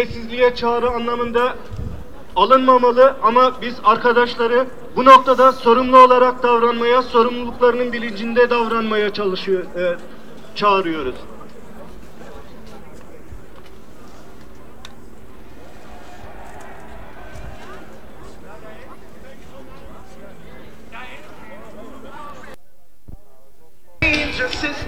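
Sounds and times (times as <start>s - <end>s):
speech: 0.0s - 1.8s, 2.4s - 11.3s
crowd voices in a metro station: 11.2s - 22.5s.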